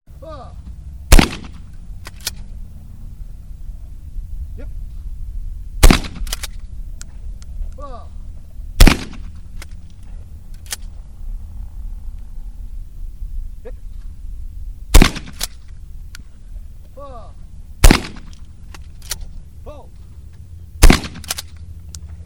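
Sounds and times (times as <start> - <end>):
skeet shooting: 1.1 - 2.5, 5.8 - 7.2, 8.8 - 10.0, 14.9 - 15.8, 17.8 - 19.4, 20.8 - 22.2.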